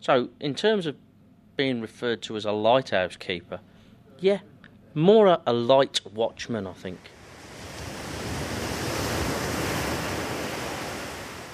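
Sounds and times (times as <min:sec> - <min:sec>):
speech: 0:00.0 - 0:07.2
Atlantic Ocean waves washing against the shore: 0:06.9 - 0:11.5.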